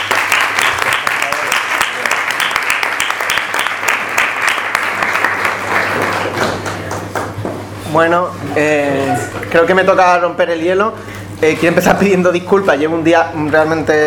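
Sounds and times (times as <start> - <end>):
audience applause at a cultural lecture event: 0.0 - 7.3
speech: 8.0 - 14.0.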